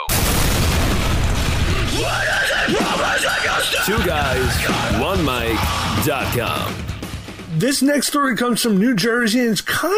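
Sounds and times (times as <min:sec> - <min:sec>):
loud rumbling explosion blast: 0:00.0 - 0:06.9
speech: 0:03.6 - 0:06.9, 0:07.6 - 0:09.9.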